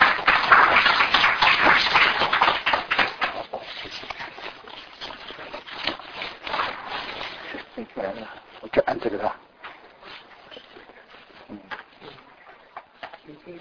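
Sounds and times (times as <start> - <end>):
lecture audience applauding: 0.0 - 4.2
speech: 9.0 - 9.4.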